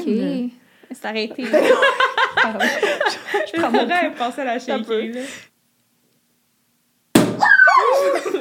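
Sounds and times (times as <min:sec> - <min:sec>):
speech: 0:00.1 - 0:05.5
people laughing: 0:01.4 - 0:04.0, 0:07.6 - 0:08.4
bottle cork popping open: 0:07.1 - 0:07.6
excited voices: 0:07.4 - 0:08.4.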